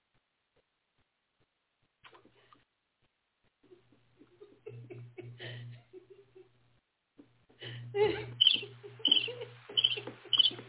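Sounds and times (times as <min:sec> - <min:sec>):
laughter: 0:03.7 - 0:06.6, 0:07.6 - 0:10.6
birds chirping: 0:08.2 - 0:10.6.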